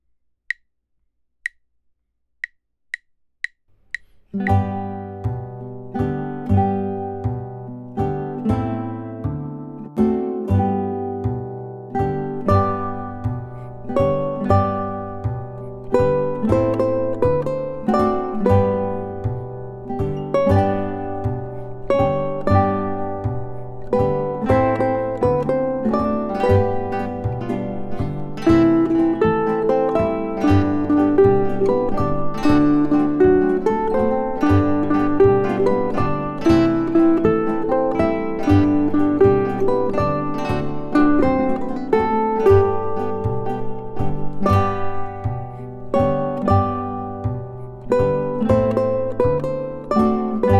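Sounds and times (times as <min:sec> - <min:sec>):
ukulele trio: 0:04.4 - 0:50.5.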